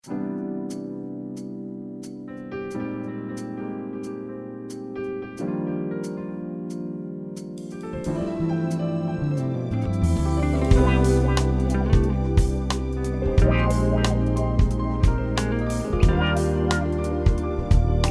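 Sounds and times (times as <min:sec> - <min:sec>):
smooth jazz music: 0:00.0 - 0:18.1.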